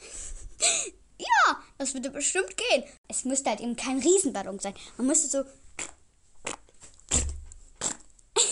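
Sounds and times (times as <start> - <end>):
speech: 1.8 - 5.7
voice imitating farts with raspy bursts: 5.8 - 8.1.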